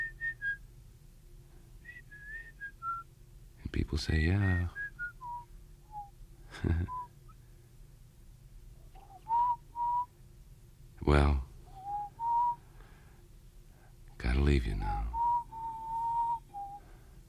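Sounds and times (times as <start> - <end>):
person whistling a tune: 0.0 - 0.6, 1.8 - 3.0, 4.5 - 6.1, 6.9 - 7.1, 9.0 - 10.1, 11.7 - 12.6, 15.1 - 16.9
speech: 3.8 - 4.8, 6.6 - 7.0, 11.1 - 11.5, 14.5 - 15.0.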